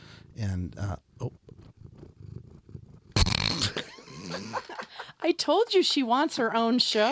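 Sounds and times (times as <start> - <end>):
cat purring: 0.0 - 5.1
speech: 0.4 - 1.4, 5.3 - 7.1.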